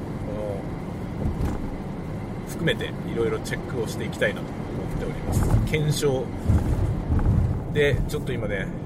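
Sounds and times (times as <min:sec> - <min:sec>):
road noise inside a moving car on a bumpy road: 0:00.0 - 0:08.8
car bump from a step in the road: 0:01.2 - 0:01.8, 0:05.2 - 0:08.2
speech: 0:02.6 - 0:06.9, 0:07.7 - 0:08.8.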